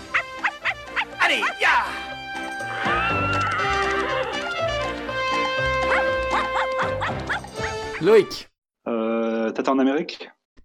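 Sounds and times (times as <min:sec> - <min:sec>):
loud twangy western-style music: 0:00.0 - 0:08.4
speech: 0:01.3 - 0:02.1, 0:08.0 - 0:08.5, 0:09.6 - 0:10.6
horse neighing in shrill whinnying bursts: 0:02.7 - 0:04.7.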